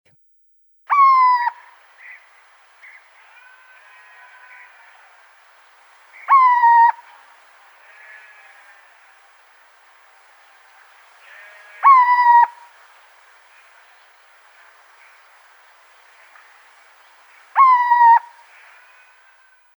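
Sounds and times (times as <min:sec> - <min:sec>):
frightening cries of a little owl: 0:00.9 - 0:09.9, 0:10.8 - 0:13.1, 0:17.4 - 0:18.7.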